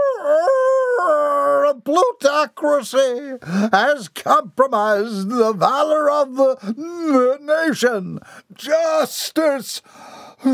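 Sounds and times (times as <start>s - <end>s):
person howling like a dog: 0.0s - 1.8s
speech: 1.8s - 10.5s.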